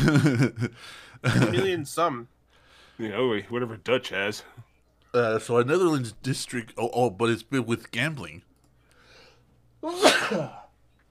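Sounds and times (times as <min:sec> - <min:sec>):
speech: 0:00.0 - 0:02.4, 0:03.0 - 0:08.5, 0:09.8 - 0:10.6
loud sneeze: 0:09.8 - 0:10.7.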